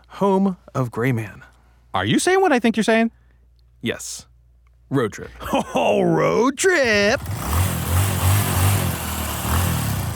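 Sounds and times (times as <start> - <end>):
speech: 0.2 - 3.2, 3.8 - 4.3, 4.9 - 7.4
motorcycle engine revving: 6.9 - 10.1.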